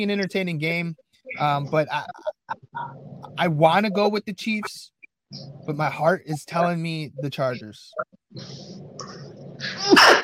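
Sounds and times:
speech: 0.0s - 8.7s
person sneezing: 9.7s - 10.2s.

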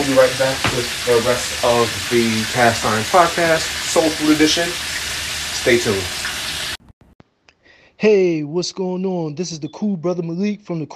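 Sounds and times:
water running from a tap while washing dishes: 0.0s - 6.8s
speech: 0.1s - 6.2s, 8.0s - 10.9s.

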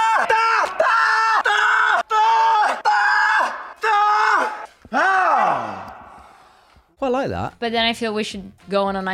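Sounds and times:
person screaming while falling: 0.0s - 6.1s
speech: 7.1s - 9.1s.

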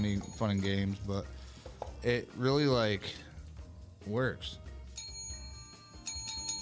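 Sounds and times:
call bell ringing: 0.0s - 1.0s, 4.9s - 6.6s
speech: 0.0s - 1.4s, 2.0s - 3.3s, 4.0s - 4.6s.

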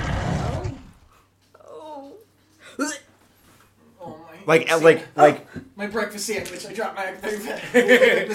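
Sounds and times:
loud rough creature roar: 0.0s - 1.0s
speech: 4.5s - 8.3s
laughter: 7.4s - 8.3s.

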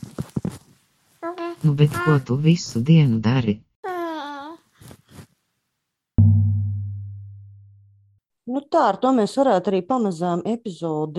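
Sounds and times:
speech: 1.2s - 3.7s, 8.7s - 11.1s
baby babbling after waking up: 3.8s - 4.7s
loud low thump: 6.2s - 7.8s.

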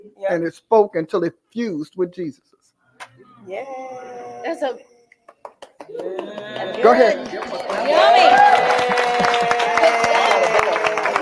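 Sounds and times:
speech: 0.2s - 2.6s, 3.4s - 4.9s, 5.9s - 10.8s
sharp hand claps: 5.1s - 11.1s
crowd murmuring and chattering in a busy room: 6.0s - 11.1s.

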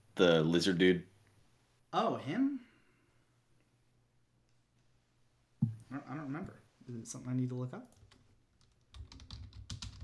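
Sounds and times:
speech: 0.2s - 1.1s, 1.9s - 2.7s, 5.9s - 8.0s
typing on a computer keyboard: 7.9s - 10.0s.

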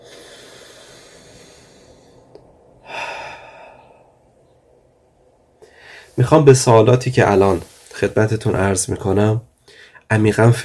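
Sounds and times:
deep conscious breathing during a guided mindfulness exercise: 0.0s - 4.6s, 5.6s - 6.3s, 9.6s - 10.1s
speech: 6.2s - 9.5s, 10.1s - 10.6s.

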